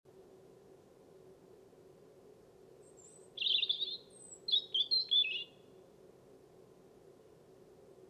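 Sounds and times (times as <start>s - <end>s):
soft constant hum: 0.1s - 8.0s
European robin delivering a short song: 3.0s - 5.6s.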